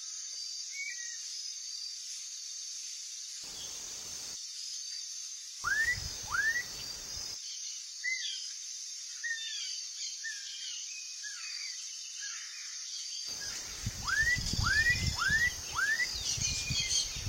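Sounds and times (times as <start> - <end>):
steady high insect hiss: 0.0 - 17.2
Black-capped donacobius song: 5.6 - 7.0, 13.8 - 17.2.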